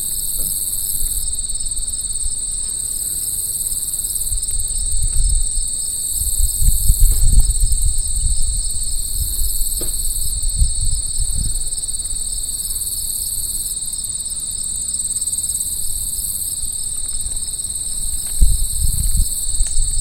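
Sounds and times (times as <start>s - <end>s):
crickets trilling in a steady high chorus: 0.0s - 20.0s
low rumbling wind or traffic noise: 4.3s - 12.3s, 17.0s - 20.0s.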